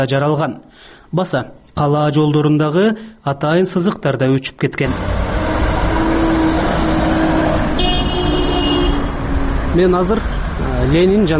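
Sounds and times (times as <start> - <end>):
speech: 0.0 - 5.3, 9.8 - 11.3
traffic engine rumble at a city street intersection in Osh: 4.8 - 11.3.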